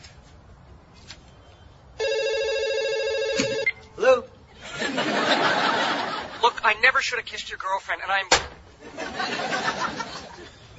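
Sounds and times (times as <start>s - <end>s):
loud buzzy electronic telephone ringing: 2.0s - 3.8s
laughter: 4.6s - 6.6s, 8.8s - 10.6s
speech: 7.0s - 9.9s.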